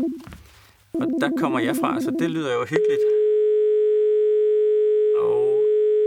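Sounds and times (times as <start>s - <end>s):
speech: 1.0s - 3.2s
telephone busy tone after a phone-in caller hung up: 1.9s - 6.0s.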